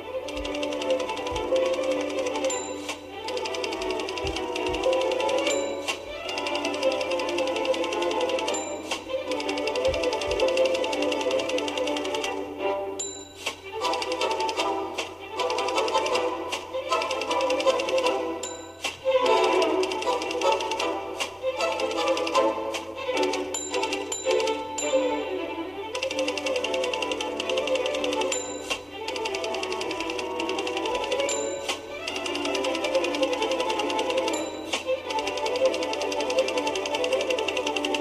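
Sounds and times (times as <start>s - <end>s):
mechanical typing on a typewriter: 0.2s - 12.4s, 13.4s - 24.6s, 25.9s - 38.0s
typewriter bell dings: 0.7s - 11.6s, 13.0s - 14.6s, 17.2s - 20.6s, 23.5s - 25.1s, 26.0s - 36.2s.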